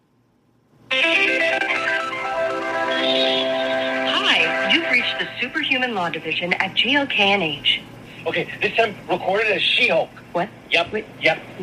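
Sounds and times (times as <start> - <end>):
phone call to a law firm ringing through a phone's speakerphone: 0.9 - 5.6
speech: 5.2 - 11.6.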